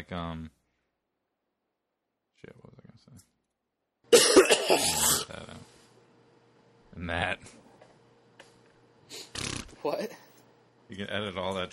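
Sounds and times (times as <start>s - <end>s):
speech: 0.0s - 0.6s, 2.4s - 3.4s, 4.1s - 5.7s, 7.0s - 7.6s, 9.1s - 10.2s, 10.9s - 11.7s
harsh loud cough from a sick man: 4.1s - 5.5s.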